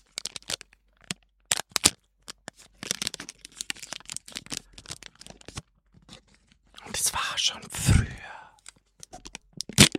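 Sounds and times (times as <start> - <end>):
object being unwrapped from its packaging, rustling and tearing: 0.0 - 6.7, 9.0 - 9.9
speech: 7.4 - 7.9.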